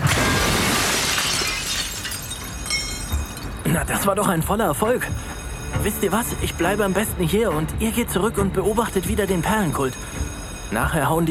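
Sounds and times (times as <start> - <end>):
glass window pane being deliberately smashed in: 0.0 - 3.7
speech: 3.7 - 11.2.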